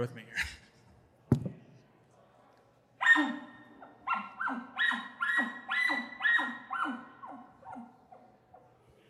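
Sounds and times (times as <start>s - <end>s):
speech: 0.0s - 0.5s
elk bark blown on a game call: 3.0s - 7.9s.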